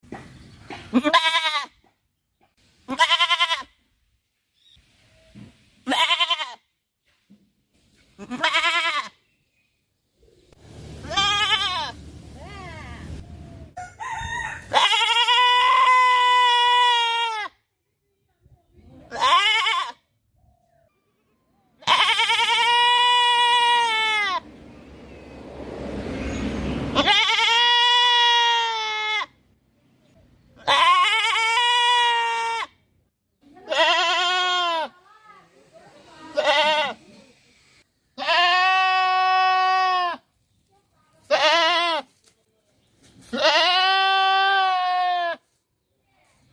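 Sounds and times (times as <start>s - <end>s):
happy goat bleating: 0.8s - 1.8s, 2.9s - 3.8s, 5.8s - 6.6s, 8.2s - 9.2s, 11.0s - 13.3s, 14.7s - 17.6s, 19.1s - 20.0s, 21.8s - 24.4s, 26.9s - 29.4s, 30.6s - 32.8s, 33.6s - 35.0s, 36.2s - 37.1s, 38.2s - 40.3s, 41.2s - 42.2s, 43.2s - 45.5s.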